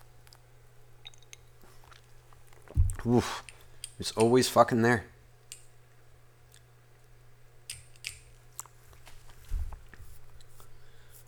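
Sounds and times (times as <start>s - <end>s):
steady low electrical hum: 0.0s - 11.2s
person sipping a drink: 1.0s - 3.6s
speech: 3.0s - 5.1s.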